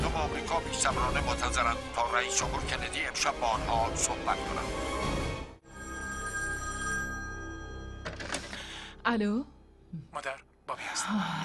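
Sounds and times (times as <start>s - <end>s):
speech: 0.2s - 5.0s, 9.1s - 10.4s, 11.0s - 11.4s
telephone bell ringing: 5.6s - 8.6s.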